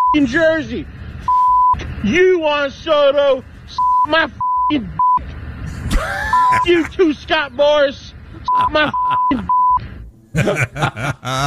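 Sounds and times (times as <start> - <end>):
high-pitched censor beeps over profanity: 0.0 - 0.2, 1.3 - 1.8, 3.8 - 5.2, 6.3 - 6.6
speech: 0.1 - 5.0, 6.0 - 9.6, 10.4 - 11.4
laughter: 5.8 - 7.0, 8.4 - 9.6, 10.3 - 11.4.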